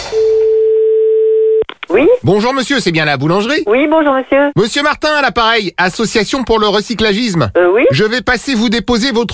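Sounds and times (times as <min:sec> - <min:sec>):
telephone ringing tone before call connects: 0:00.1 - 0:01.6
speech: 0:02.2 - 0:09.3.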